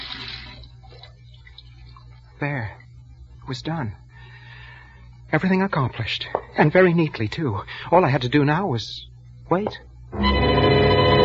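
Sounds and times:
tap water running into a sink: 0.0 - 2.3
speech: 2.4 - 2.8, 3.5 - 4.0, 5.3 - 10.4.

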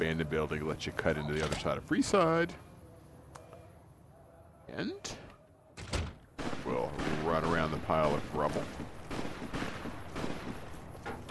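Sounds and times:
speech: 0.0 - 2.7, 4.7 - 5.2, 6.7 - 9.0
distant gunfire: 6.4 - 10.8.

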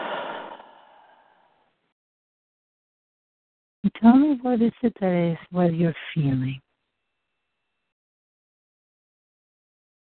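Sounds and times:
deep exhale: 0.0 - 1.6
speech: 3.8 - 6.6.

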